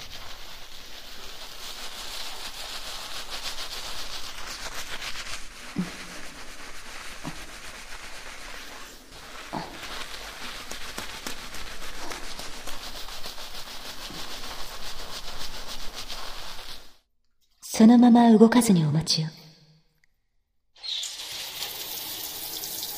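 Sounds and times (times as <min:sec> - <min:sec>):
water spray rinsing foam off a person's face during a hair shampoo: 0:00.0 - 0:14.9
fingers rubbing and washing foamy hair: 0:00.0 - 0:17.0
speech: 0:17.8 - 0:19.4.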